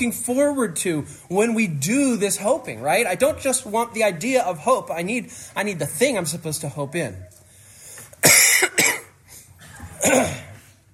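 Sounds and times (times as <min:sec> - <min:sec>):
speech: 0:00.0 - 0:07.3, 0:10.0 - 0:10.5
church audience member coughing during a sermon: 0:08.2 - 0:10.7.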